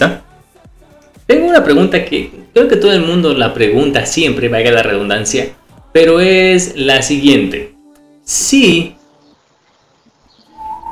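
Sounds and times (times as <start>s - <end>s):
speech: 0.0s - 0.2s, 1.4s - 7.7s, 8.3s - 9.0s
windows whistling in the wind: 10.4s - 10.8s.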